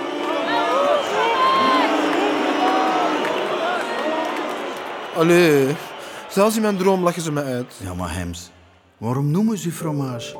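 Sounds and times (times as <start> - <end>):
large football stadium crowd roaring and cheering: 0.0 - 8.7
speech: 5.2 - 10.3.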